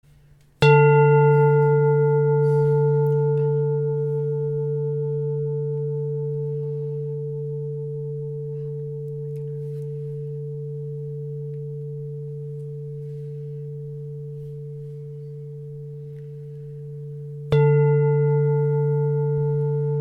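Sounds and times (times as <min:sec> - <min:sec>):
chakra singing bowl: 0:00.2 - 0:19.9.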